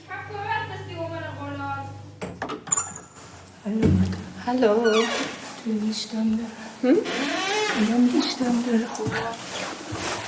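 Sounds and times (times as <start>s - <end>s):
door being unlocked and pulled open with clicks and a metallic rattle: 2.2s - 3.1s
speech: 3.8s - 9.6s.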